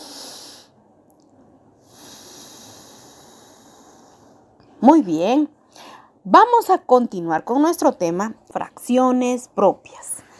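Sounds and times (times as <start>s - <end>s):
person breathing in through the nose and out through the mouth: 0.0s - 0.8s, 1.8s - 4.6s, 5.7s - 6.2s, 10.2s - 10.3s
speech: 4.8s - 5.6s, 6.2s - 10.1s.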